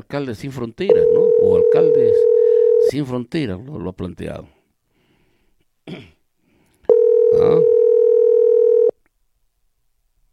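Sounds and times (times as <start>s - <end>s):
speech: 0.0s - 4.6s, 5.9s - 6.2s
telephone dial tone as a call is placed: 0.9s - 2.9s, 6.9s - 9.0s.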